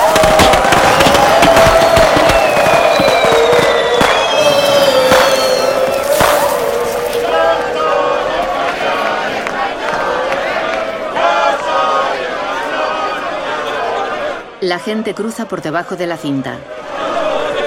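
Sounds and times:
thin firework whistles: 0.0 - 8.0
small fireworks crackling and popping out of a wastebasket: 0.0 - 10.9
crowd murmur: 0.0 - 14.6
speech: 14.7 - 16.8.

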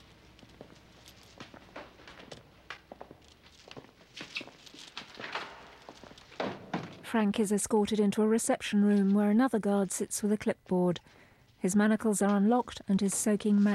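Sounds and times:
footsteps of several people walking down a narrow dimly lit prison corridor: 0.0 - 7.0
speech: 7.1 - 13.7.

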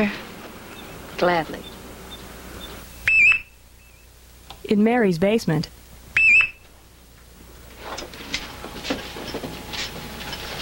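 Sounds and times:
speech: 0.0 - 0.3, 1.2 - 1.7, 4.7 - 5.8
shrill electronic alarm beep in a basement: 1.6 - 4.1, 6.2 - 6.6.

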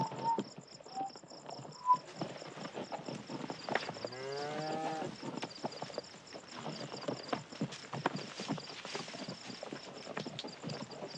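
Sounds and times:
horse hooves clip-clopping at a slow walk among a herd of cattle: 0.0 - 11.1.

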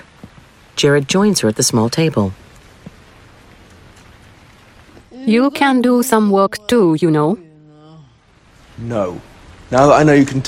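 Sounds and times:
heavy rain pouring down: 0.0 - 10.4
speech: 0.8 - 2.4, 5.3 - 7.4, 8.8 - 10.4.

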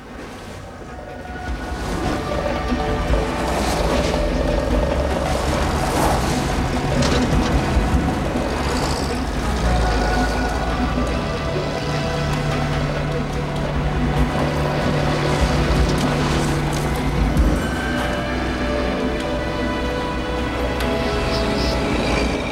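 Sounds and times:
several car engines rumbling and revving, driving off on dusty ground: 0.0 - 22.5.

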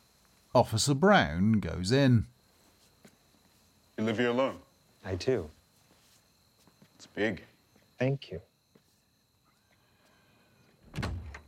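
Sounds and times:
speech: 0.6 - 2.4, 4.0 - 5.6, 7.1 - 8.5
door being shut in a house: 10.8 - 11.4.

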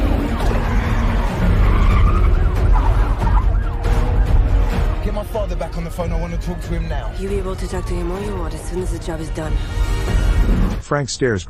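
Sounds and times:
car engine roaring during a police chase: 0.0 - 5.0
car tires squealing while braking and skidding around a long curve: 0.0 - 5.1
police sirens wailing: 0.0 - 10.3
speech: 5.5 - 11.4.

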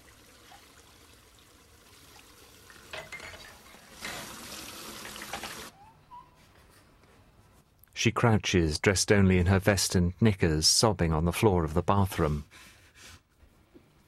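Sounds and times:
water running from a tap in a bathroom: 0.0 - 5.7
speech: 8.0 - 12.7.

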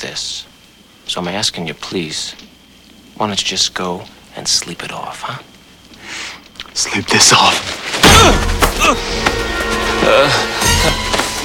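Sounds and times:
speech: 0.0 - 0.5, 1.1 - 2.6, 3.2 - 5.5, 6.8 - 11.0
punch sound effects from a fist fight: 7.9 - 9.4.

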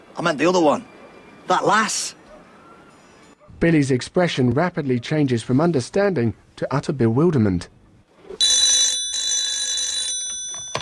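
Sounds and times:
speech: 0.2 - 0.9, 1.5 - 2.2, 3.6 - 7.8
telephone ringing in bright electronic bursts: 8.4 - 10.8.

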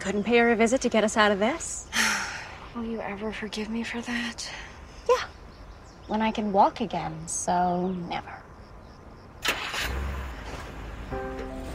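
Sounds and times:
speech: 0.0 - 2.0, 2.8 - 5.3, 6.1 - 8.5
car engine cranking and starting: 9.4 - 11.7.

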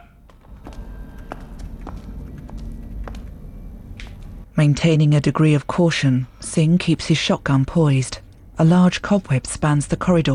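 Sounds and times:
footsteps hurrying down a corridor: 0.0 - 3.4
continuous low rumble: 0.2 - 10.3
speech: 4.6 - 10.3.

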